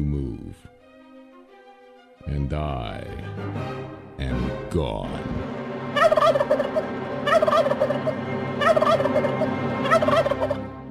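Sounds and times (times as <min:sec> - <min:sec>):
speech: 0:02.2 - 0:05.5, 0:07.5 - 0:10.6
voice actor imitating turkey gobbling: 0:06.0 - 0:10.6.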